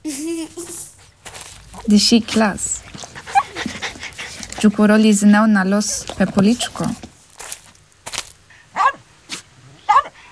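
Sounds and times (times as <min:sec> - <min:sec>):
speech: 0:01.9 - 0:02.8, 0:04.6 - 0:07.0
small dog yapping: 0:08.8 - 0:10.3.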